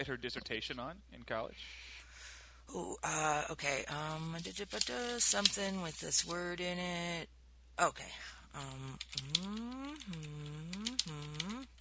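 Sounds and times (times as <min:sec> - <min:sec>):
speech: 0:00.0 - 0:02.0, 0:02.7 - 0:10.6
steady humming voice sliding in pitch: 0:08.6 - 0:11.7
typing letters on a keyboard: 0:08.6 - 0:11.7.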